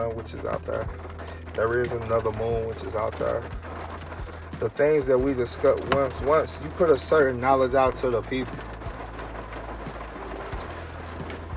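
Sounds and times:
speech: 0.0 - 3.7, 4.6 - 8.7
heavy rain pouring down: 0.0 - 11.5.

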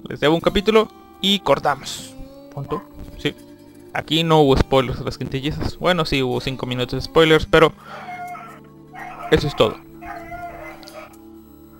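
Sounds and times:
speech: 0.0 - 8.1, 9.3 - 9.9
dogs barking and yelping: 7.7 - 11.2.

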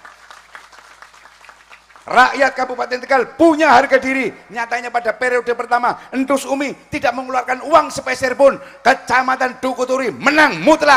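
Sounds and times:
crowd applauding: 0.0 - 2.8
speech: 2.0 - 10.9.

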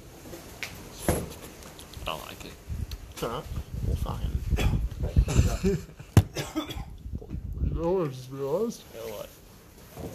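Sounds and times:
speech: 2.3 - 6.0, 7.8 - 9.4
person coughing after a vape hit: 4.5 - 4.8, 6.3 - 7.0
throat clearing after a vape hit: 4.5 - 4.9, 6.3 - 7.0.

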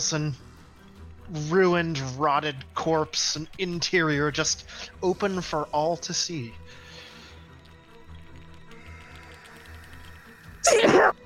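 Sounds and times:
speech: 0.0 - 0.5, 1.3 - 6.8
person sneezing: 10.6 - 11.2.

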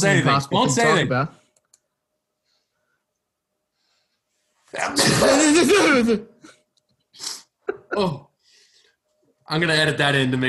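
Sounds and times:
speech: 0.0 - 1.4, 4.7 - 6.3, 7.2 - 8.3, 9.5 - 10.4
loud explosive sneeze: 4.8 - 6.2.

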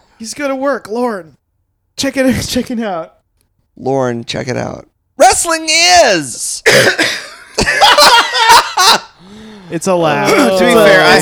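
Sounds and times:
speech: 0.2 - 1.4, 2.0 - 3.2, 3.8 - 8.2, 9.7 - 11.1
person coughing: 6.6 - 7.4
laughter: 7.0 - 9.4, 10.2 - 11.1.

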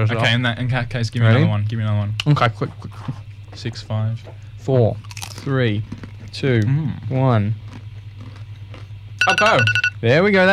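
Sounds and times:
speech: 0.0 - 7.7, 9.2 - 10.5
chewing a crunchy salty cracker: 5.0 - 9.0.

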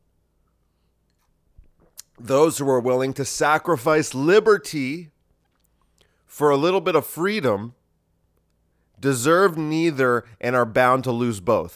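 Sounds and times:
person sipping water with wet mouth sounds: 1.8 - 2.2
speech: 2.2 - 5.1, 6.3 - 7.8, 9.0 - 11.7.

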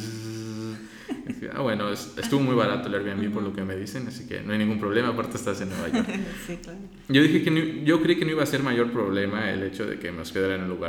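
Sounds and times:
voice imitating a noisy hot water pipe with droning hum and gurgles: 0.0 - 0.9
laughter: 0.0 - 4.0, 5.7 - 6.7
speech: 1.4 - 10.8.

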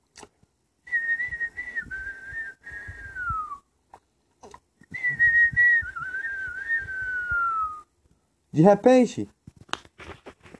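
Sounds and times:
person whistling a bird-like warbling song: 0.9 - 3.7, 4.9 - 7.9
speech: 8.6 - 9.4.

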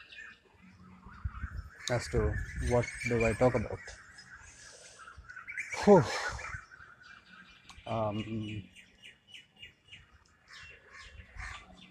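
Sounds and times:
birds chirping outdoors: 0.0 - 11.9
speech: 1.9 - 4.0, 5.8 - 6.4, 7.9 - 8.7.

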